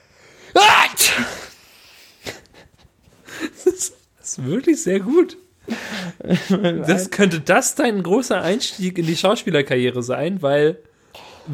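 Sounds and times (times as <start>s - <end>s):
person imitating a loud roaring sneeze: 0.6s - 1.6s
speech: 4.4s - 5.5s, 6.2s - 11.5s
laughter: 5.9s - 7.1s.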